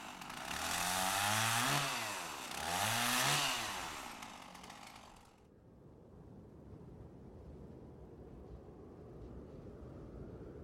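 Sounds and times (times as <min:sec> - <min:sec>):
chainsaw cutting wood: 0:00.0 - 0:05.4.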